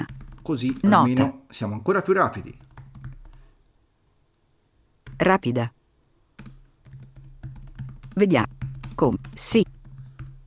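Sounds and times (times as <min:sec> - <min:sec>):
typing on a computer keyboard: 0:00.0 - 0:01.1, 0:02.5 - 0:03.4, 0:05.0 - 0:05.2, 0:06.4 - 0:10.4
faint hiss: 0:00.0 - 0:10.4
speech: 0:00.5 - 0:02.7, 0:05.2 - 0:05.8, 0:08.2 - 0:08.4, 0:09.0 - 0:09.7.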